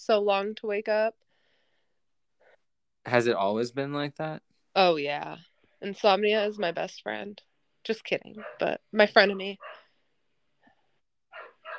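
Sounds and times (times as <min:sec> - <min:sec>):
speech: 0:00.0 - 0:01.2, 0:03.0 - 0:09.8
dogs barking: 0:08.3 - 0:08.8, 0:09.5 - 0:09.9, 0:11.3 - 0:11.7
dog yelping: 0:08.4 - 0:08.8, 0:09.6 - 0:09.9, 0:11.3 - 0:11.7.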